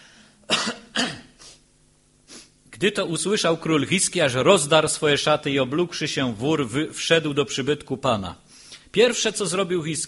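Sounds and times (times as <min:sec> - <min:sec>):
man clearing throat in a sermon: 0:00.4 - 0:01.4
speech: 0:02.8 - 0:10.0.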